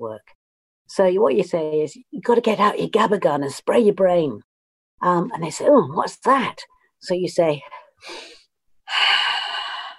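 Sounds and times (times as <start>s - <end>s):
speech: 0.0s - 9.3s
slow calming breath in and out: 7.9s - 9.9s.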